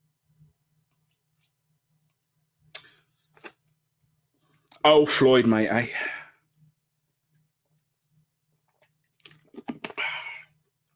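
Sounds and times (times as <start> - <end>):
wet mouth clicks and smacks: 2.7 - 3.0, 9.1 - 10.0
speech: 4.8 - 6.2
person sipping water: 9.1 - 10.5.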